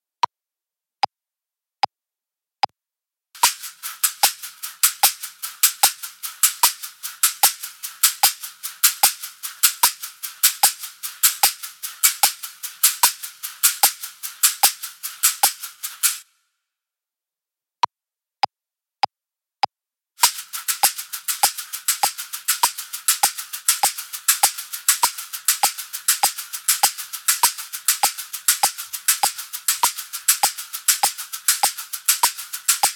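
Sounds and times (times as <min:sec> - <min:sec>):
two matching caxixi shakers: 0:03.4 - 0:16.2, 0:20.2 - 0:32.9.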